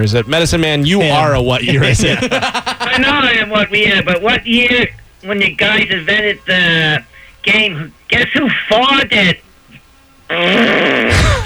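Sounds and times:
speech: 0.0s - 9.4s, 10.3s - 11.4s
laughter: 1.4s - 4.1s, 11.1s - 11.4s
man making a raspberry-style fart noise with his mouth: 10.3s - 11.4s.

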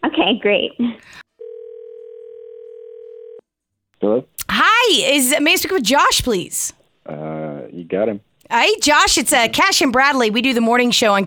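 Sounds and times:
speech: 0.0s - 1.2s, 4.0s - 11.2s
telephone ringback tone of an outgoing call: 1.4s - 3.4s.

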